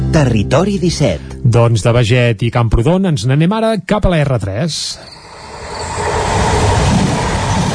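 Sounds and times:
speech: 0.1 - 5.2
commuter train rumbling along its rails: 5.2 - 7.7.

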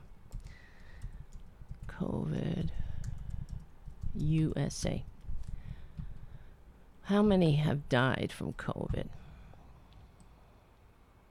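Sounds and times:
low hum: 0.0 - 11.2
typing on a computer keyboard: 0.3 - 2.0, 2.6 - 6.4
speech: 4.2 - 5.1, 7.1 - 9.2.

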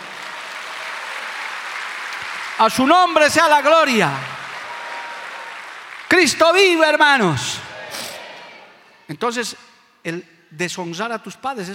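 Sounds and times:
crowd applauding: 0.0 - 8.7
speech: 2.6 - 4.3, 6.2 - 7.7, 9.1 - 11.7.

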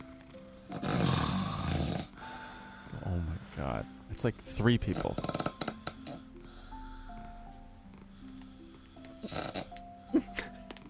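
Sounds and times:
loud rough snoring: 0.6 - 2.3, 4.8 - 9.9
quiet breathing: 2.0 - 3.6, 4.8 - 10.1
speech: 3.8 - 5.5.

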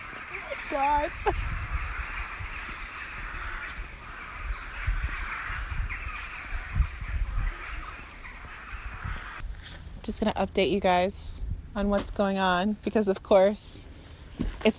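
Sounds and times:
large flock of crows cawing over a parsonage graveyard: 0.0 - 9.4
low rumbling background: 0.5 - 13.2
speech: 0.8 - 1.5, 10.1 - 13.9.

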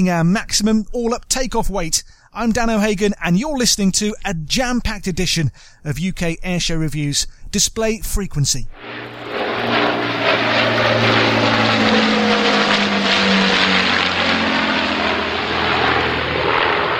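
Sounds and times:
speech: 0.0 - 10.0
Lancaster bomber engines roaring with propeller drone: 8.8 - 16.9.

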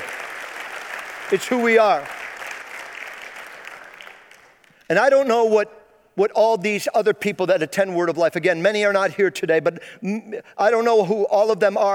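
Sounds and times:
large church audience applauding: 0.0 - 4.8
speech: 1.3 - 2.2, 4.9 - 11.9.

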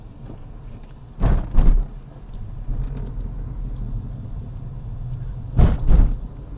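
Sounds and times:
car engine hum: 0.0 - 6.5
car driving over a speed bump: 0.2 - 3.0, 5.2 - 6.5.

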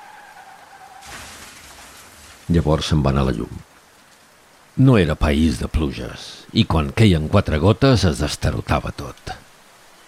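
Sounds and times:
car tires squealing in a skid: 0.0 - 2.4
car crashing into something: 0.4 - 3.5
rumbling noise: 1.0 - 3.7
speech: 2.5 - 3.7, 4.8 - 9.4.

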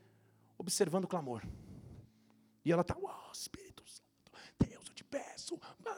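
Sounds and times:
speech: 0.7 - 1.7, 2.6 - 4.0
person whispering rapidly and softly in private prayer: 0.7 - 1.8, 2.7 - 5.9.

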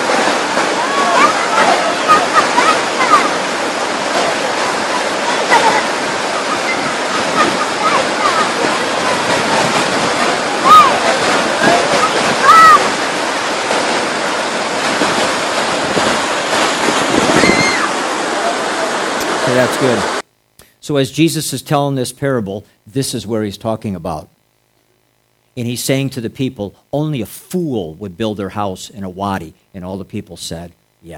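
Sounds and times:
wind buffeting: 0.0 - 19.4
floodwater rushing into a narrow wadi: 0.0 - 20.2
speech: 19.8 - 20.2, 20.9 - 24.4, 25.6 - 31.1.

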